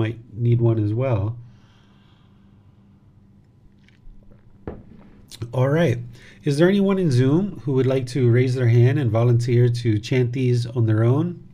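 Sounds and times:
speech: 0.0 - 1.4, 5.4 - 11.4
faint steady hum: 0.0 - 11.5
person sipping water: 3.6 - 4.7.

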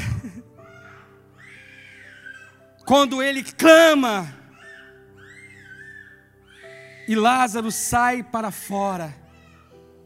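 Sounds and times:
baby fussing and crying in a thin wail: 0.5 - 2.8, 4.4 - 7.5, 9.2 - 10.0
speech: 2.9 - 4.4, 7.1 - 9.2.

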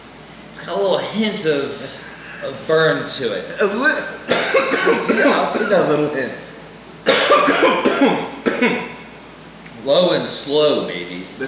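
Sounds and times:
speech: 0.7 - 8.8, 9.9 - 11.4
harsh raspy coughing after inhaling smoke from rosin: 3.5 - 5.9, 7.0 - 9.0.

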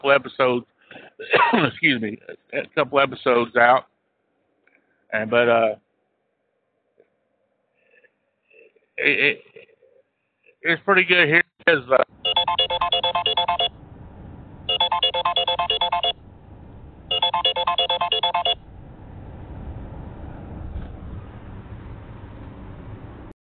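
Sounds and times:
speech: 0.0 - 3.9, 5.1 - 5.8, 9.0 - 9.7, 10.6 - 13.3
low hiss and rumble: 0.0 - 6.2, 8.6 - 23.2
mobile phone ringtone for an incoming call: 12.2 - 13.7, 14.7 - 16.2, 17.1 - 18.6.

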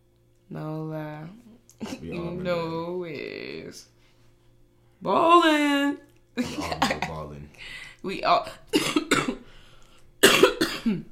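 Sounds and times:
speech: 0.5 - 4.0, 5.0 - 5.6
person coughing: 6.4 - 7.1, 8.7 - 9.4, 10.2 - 11.0.

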